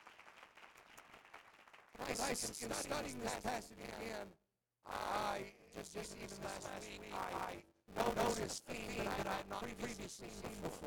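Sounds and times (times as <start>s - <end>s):
audience applause: 0.0s - 1.9s
speech: 2.0s - 10.8s.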